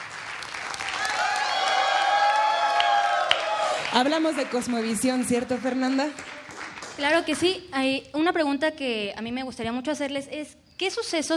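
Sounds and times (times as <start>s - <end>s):
people cheering: 0.0s - 6.5s
people clapping: 0.0s - 7.6s
crowd giving a traditional Mexican grito: 0.8s - 4.0s
speech: 3.9s - 6.4s, 7.0s - 11.3s.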